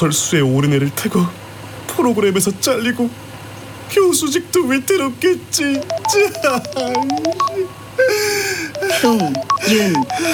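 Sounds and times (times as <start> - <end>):
speech: 0.0 - 1.4, 2.0 - 3.2, 3.9 - 10.3
phone ringing with bright electronic melody of short tones: 5.7 - 10.3.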